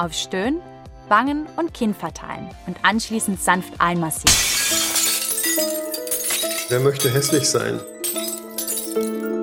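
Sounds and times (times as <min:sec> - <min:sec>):
speech: 0:00.0 - 0:04.8, 0:05.6 - 0:06.1, 0:06.7 - 0:08.3
falling glass fragments: 0:04.3 - 0:09.3
mirror glass shattering: 0:04.3 - 0:09.3.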